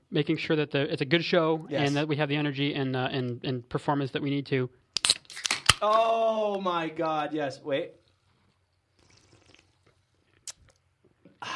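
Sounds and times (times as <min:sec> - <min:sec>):
speech: 0:00.1 - 0:04.8, 0:05.8 - 0:08.0
slurping a drink: 0:08.0 - 0:10.8.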